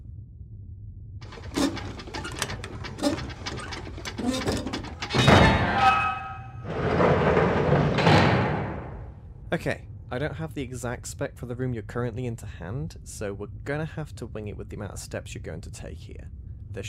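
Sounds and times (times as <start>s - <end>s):
heavy metallic clunks and clicks of a door lock: 1.2s - 5.8s
metal wheel manual override on a locked door squealing: 1.2s - 7.7s
speech: 9.5s - 16.8s.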